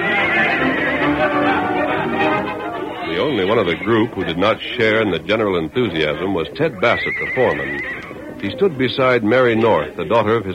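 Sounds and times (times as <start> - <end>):
bay stallion neighing while plunging under a rider: 0.0 - 4.4, 6.2 - 8.3
laughter: 0.0 - 10.4
speech: 3.2 - 10.5.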